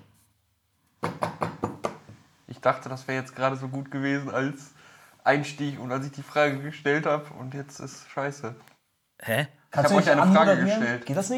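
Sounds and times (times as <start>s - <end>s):
knocking on a table: 1.0s - 2.2s
speech: 2.6s - 11.3s.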